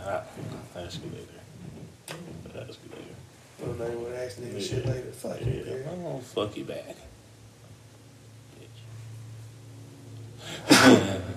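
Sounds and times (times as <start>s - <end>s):
speech: 0.1s - 1.5s, 2.6s - 7.1s
person sneezing: 10.5s - 11.3s.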